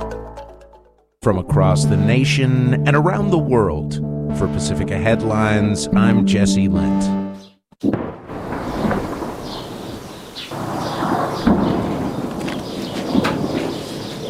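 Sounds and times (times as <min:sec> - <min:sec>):
speech: 0:01.2 - 0:08.0
heavy explosions at a castle in southern Lebanon during military ground operations: 0:07.8 - 0:14.2.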